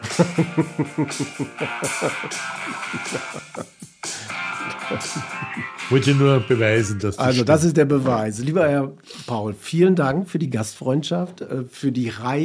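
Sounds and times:
laughter: 0.0 - 6.6
speech: 0.2 - 4.3, 4.9 - 12.4
mobile phone ringtone playing a rock song: 1.5 - 3.2, 3.9 - 7.0.

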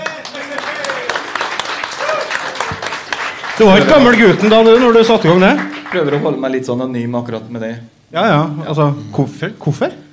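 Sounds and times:
scattered voices cheering: 0.0 - 6.3
crowd applauding: 0.0 - 6.7
speech: 3.6 - 10.0.

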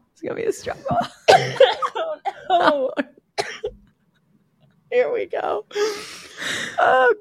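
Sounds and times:
speech: 0.2 - 3.1, 4.9 - 7.1
person coughing: 1.3 - 2.6, 3.4 - 3.8.

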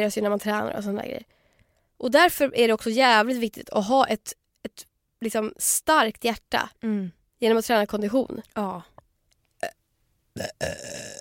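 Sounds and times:
speech: 0.0 - 1.4, 2.0 - 8.9, 10.4 - 11.1
loud burping: 9.6 - 9.8, 10.4 - 11.1.

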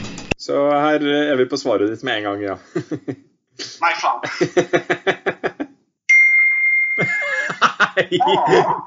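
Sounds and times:
speech: 0.5 - 3.3, 3.8 - 5.3, 8.0 - 8.8
bursts of laughter: 4.1 - 5.7, 7.1 - 8.8
computer notification chime: 6.1 - 7.5.

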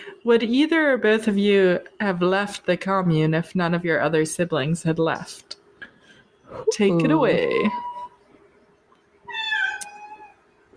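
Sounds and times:
faint steady hum: 0.0 - 10.7
speech: 0.2 - 5.5, 6.5 - 7.9
cat meowing: 9.3 - 10.4.

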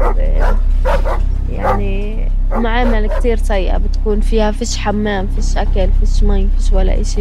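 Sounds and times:
dogs barking: 0.0 - 3.4
speech: 2.6 - 7.1.

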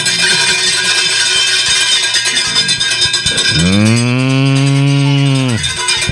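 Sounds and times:
livestock bells clanking and jingling: 0.0 - 6.0
long loud animal bleat or moo: 3.4 - 5.8.

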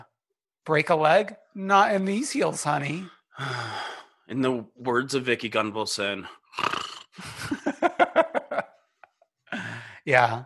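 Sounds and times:
speech: 0.7 - 7.3, 10.0 - 10.4
voice imitating snoring with nasal snorts: 6.4 - 7.2
laughter: 7.2 - 9.2.

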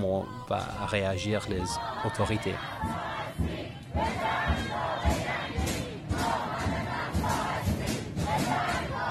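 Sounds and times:
speech: 0.0 - 4.4
large protest crowd in Iran chanting slogans in unison: 0.0 - 9.0.

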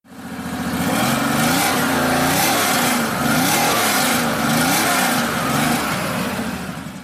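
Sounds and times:
Porsche 911 T engine revving in garage: 0.7 - 7.0.

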